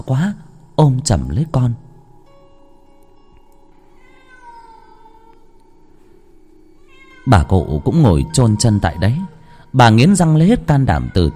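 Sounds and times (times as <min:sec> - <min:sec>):
speech: 0:00.0 - 0:01.8, 0:07.2 - 0:11.3
steady low hum: 0:00.0 - 0:11.3
cat yowling at a wooden door at night: 0:03.9 - 0:05.6, 0:06.8 - 0:09.5, 0:10.2 - 0:11.3.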